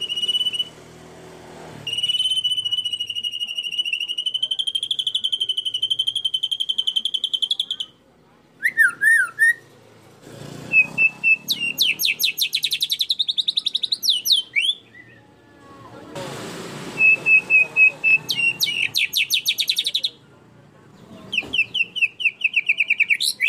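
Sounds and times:
canary song with rapid rolling trills and chattered phrases: 0.0s - 16.0s, 16.9s - 23.4s.

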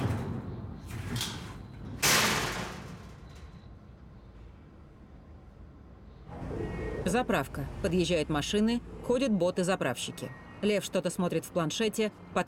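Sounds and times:
cage doors yanked and chained padlock twisted, metallic bangs and rattles: 0.0s - 3.7s
speech: 7.1s - 12.4s.

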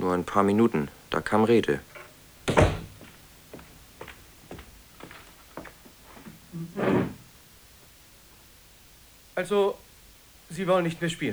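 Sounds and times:
speech: 0.0s - 1.9s, 9.4s - 9.8s, 10.5s - 11.3s
faint knocks and taps: 1.8s - 7.2s
door slammed shut by someone storming out of a room: 1.9s - 3.2s.

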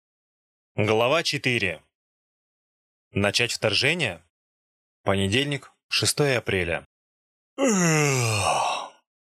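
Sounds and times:
speech: 0.8s - 1.9s, 3.1s - 4.3s, 5.0s - 6.9s, 7.6s - 8.6s
man yawning loudly: 7.6s - 9.0s.

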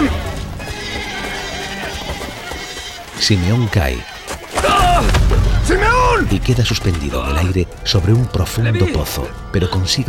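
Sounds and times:
bustle of a flock of sheep and goats: 0.0s - 4.9s
sheep and goats bleating while being herded: 0.0s - 5.0s
speech: 3.2s - 4.1s, 6.2s - 10.0s.

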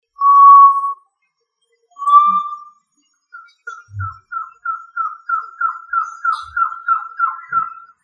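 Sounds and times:
tinamou whistling: 0.2s - 1.0s, 2.0s - 2.7s.

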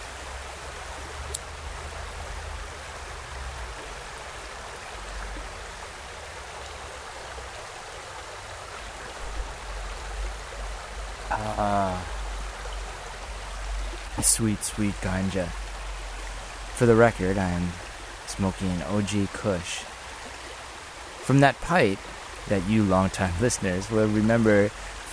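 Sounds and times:
river water flowing: 0.0s - 25.1s
speech: 11.4s - 12.1s, 14.2s - 15.6s, 16.8s - 19.9s, 21.3s - 25.1s.

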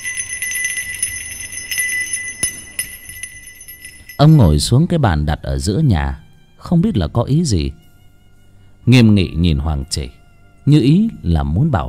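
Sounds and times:
hand bell rung with force: 0.0s - 4.7s
speech: 4.2s - 7.8s, 8.8s - 11.8s.

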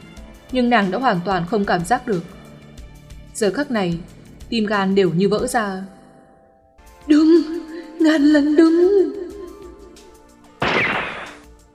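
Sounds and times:
speech: 0.5s - 2.4s, 3.4s - 6.0s, 8.0s - 9.2s
gunshot: 10.6s - 11.5s.

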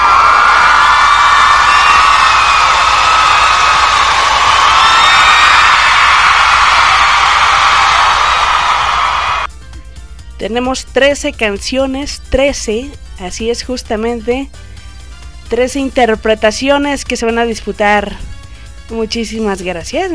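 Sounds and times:
crowd ovation with cheering and whoops at a karaoke contest: 0.0s - 9.5s
speech: 10.4s - 14.7s, 15.5s - 18.3s, 18.9s - 20.1s.

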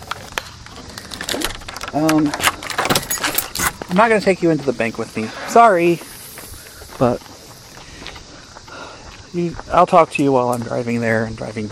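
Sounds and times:
keys jangling: 1.0s - 3.9s
speech: 1.9s - 2.5s, 3.9s - 6.1s, 7.0s - 7.3s, 9.3s - 11.7s.

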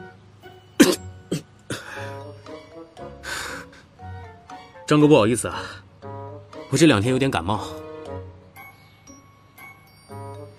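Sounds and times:
speech: 0.8s - 1.0s, 4.9s - 5.8s, 6.7s - 7.8s
man sneezing after cologne fumes catch his nose: 0.8s - 1.8s.

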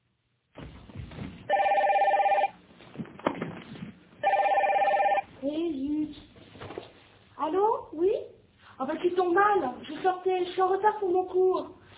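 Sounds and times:
quiet noise: 0.0s - 11.9s
telephone ringing: 1.5s - 2.6s, 4.2s - 5.3s
speech: 10.3s - 11.8s.

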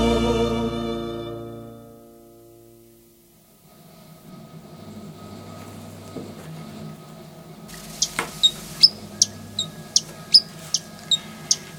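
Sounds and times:
low steady noise: 0.2s - 11.7s
tiny fast-moving bird singing with quick high chirps: 7.8s - 11.7s.

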